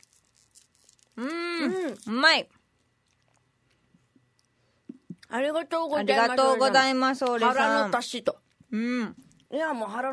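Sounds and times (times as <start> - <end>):
quiet chewing of a crunchy snack: 0.0 - 2.1, 2.8 - 4.6
low steady hum: 0.0 - 10.1
mouth sounds: 1.2 - 2.1, 8.7 - 9.3
speech: 1.2 - 2.6, 5.3 - 10.1.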